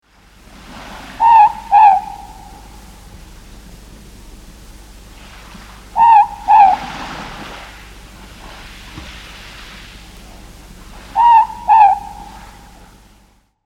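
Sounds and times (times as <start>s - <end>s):
ruru bird calling: 1.0s - 3.1s, 5.8s - 7.8s, 10.2s - 13.1s.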